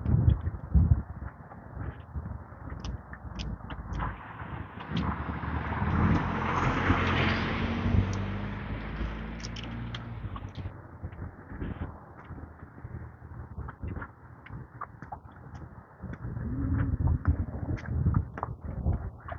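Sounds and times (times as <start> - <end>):
distant traffic engine rumble: 0.0 - 19.3
distant truck passing: 4.0 - 10.7.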